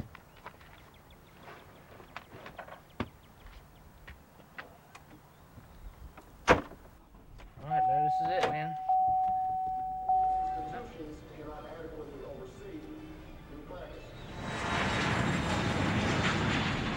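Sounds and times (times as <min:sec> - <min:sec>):
people talking: 0:07.6 - 0:14.1
plain electronic tone: 0:07.7 - 0:10.8
airplane roar at an international airport: 0:10.0 - 0:16.9.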